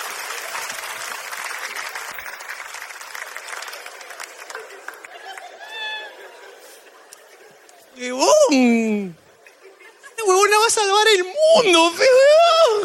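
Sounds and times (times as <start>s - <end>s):
audience applause: 0.0s - 7.3s
laughter: 4.3s - 10.5s
speech: 8.0s - 9.2s, 10.7s - 12.3s.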